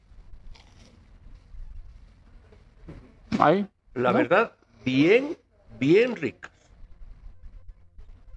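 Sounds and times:
crunchy biting into a fried morocho corn empanada: 0.4s - 1.1s
speech: 3.4s - 6.5s.

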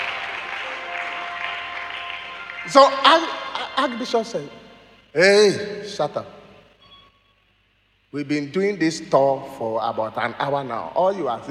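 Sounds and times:
audience applause for the speaker's brothers: 0.0s - 4.0s
speech: 2.6s - 4.6s, 5.2s - 6.4s, 8.1s - 11.4s.

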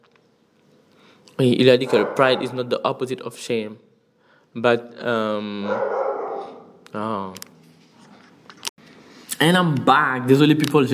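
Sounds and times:
speech: 1.4s - 3.9s, 4.5s - 6.0s, 6.9s - 7.4s, 9.4s - 10.9s
dog barking: 1.8s - 2.7s, 5.7s - 6.7s.

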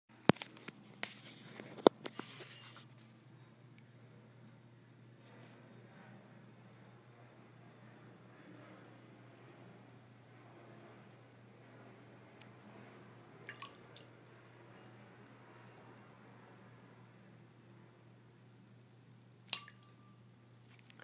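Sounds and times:
low hum: 0.1s - 21.0s
pet pawing at water in a bowl: 13.4s - 14.1s, 19.5s - 20.0s.

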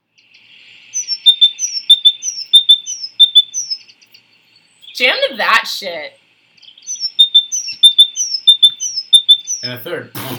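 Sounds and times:
great tit song: 0.2s - 5.2s, 6.6s - 9.8s
speech: 5.0s - 6.2s, 9.6s - 10.3s.

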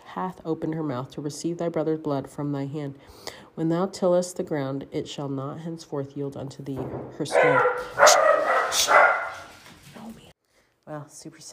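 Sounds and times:
speech: 0.2s - 9.0s, 10.9s - 11.5s
dog barking: 7.3s - 9.6s.

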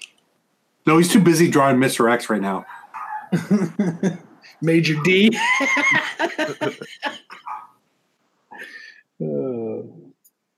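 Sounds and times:
speech: 0.9s - 7.4s, 8.6s - 10.0s
dogs barking in overlapping yaps: 2.6s - 3.4s, 4.8s - 5.4s, 7.3s - 7.8s
dog whining howl: 2.7s - 3.3s
laughter: 3.3s - 7.6s.

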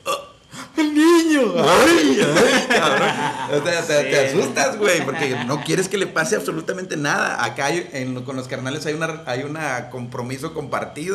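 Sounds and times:
person imitating a baby's burp with a drawn-out wavering vocal croak: 0.0s - 0.4s
speech: 1.4s - 2.7s, 3.5s - 11.1s
person chuckling: 1.6s - 3.7s, 4.5s - 6.4s.

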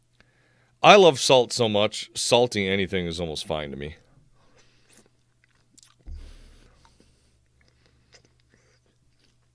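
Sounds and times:
speech: 0.8s - 4.0s
small mouth sounds: 4.5s - 9.5s
soft wet chewing of a salted apple slice: 4.5s - 9.5s
crisp bite of a salted apple slice: 4.9s - 9.5s.

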